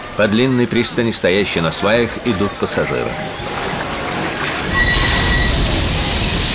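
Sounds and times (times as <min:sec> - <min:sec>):
speech: 0:00.2 - 0:03.7
loud noisy rumble of a slowing steam locomotive train: 0:04.2 - 0:06.5
steam locomotive train wheels squealing on the rails while slowing down: 0:04.6 - 0:06.5.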